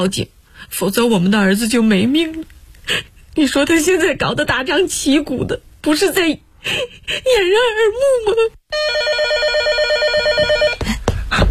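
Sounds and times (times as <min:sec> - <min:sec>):
speech: 0:00.0 - 0:09.5
telephone ringing with an electronic trill: 0:08.7 - 0:10.8.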